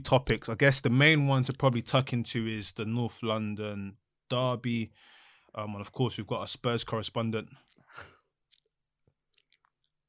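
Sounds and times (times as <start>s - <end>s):
speech: 0.0s - 8.1s
mouth smacking: 7.6s - 10.0s
person chewing food: 8.5s - 10.0s.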